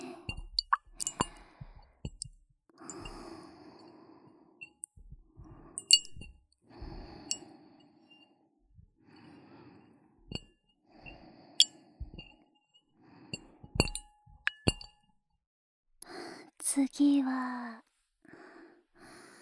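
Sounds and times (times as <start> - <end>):
glassy clinks: 0.3 - 1.4, 5.8 - 6.3, 13.8 - 15.0
small water plops: 0.3 - 2.3, 5.8 - 6.3
speech: 16.8 - 17.8.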